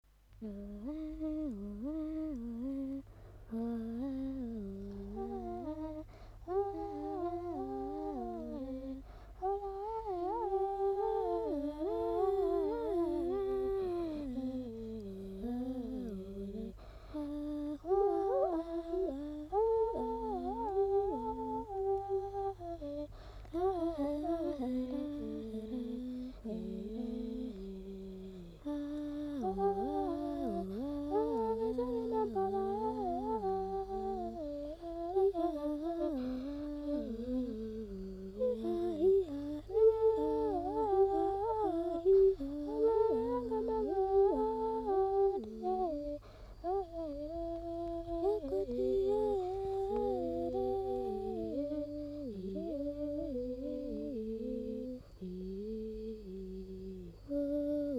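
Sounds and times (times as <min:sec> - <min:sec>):
Pygmy duo singing: 0:00.4 - 0:57.9.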